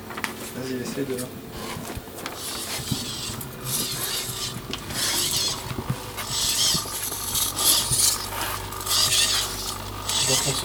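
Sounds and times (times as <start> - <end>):
speech: 0.6 - 1.9
steady low hum: 2.4 - 10.5
small robot with an infrared sensor grinding and rasping: 2.4 - 10.6.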